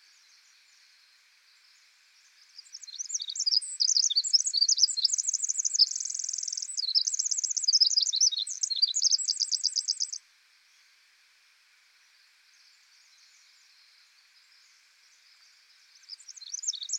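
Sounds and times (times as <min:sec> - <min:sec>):
Pacific wren singing a torrent of high jumbled notes in forest: 0:02.5 - 0:10.2, 0:16.0 - 0:16.9.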